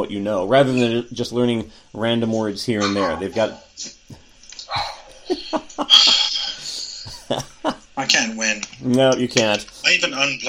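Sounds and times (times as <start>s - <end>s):
speech: 0.0s - 4.2s, 5.5s - 6.4s, 7.3s - 10.4s
dog barking: 2.8s - 3.6s, 4.7s - 5.1s
laughter: 4.7s - 8.0s.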